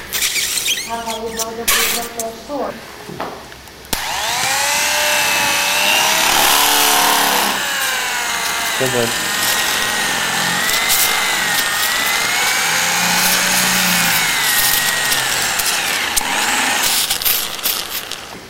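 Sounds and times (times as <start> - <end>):
speech: 0.9 - 3.5, 8.8 - 9.3
saw cutting through wood: 4.0 - 18.4.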